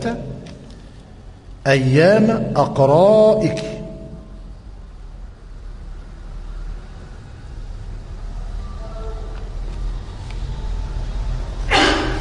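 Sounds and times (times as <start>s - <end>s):
speech: 0.0s - 0.6s, 1.6s - 3.7s
audience member sneezing during a lecture: 11.7s - 12.1s.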